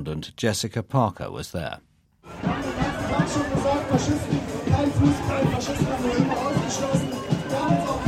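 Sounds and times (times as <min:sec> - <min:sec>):
speech: 0:00.0 - 0:08.0
dense crowd of street protesters murmuring and shouting: 0:02.2 - 0:08.0.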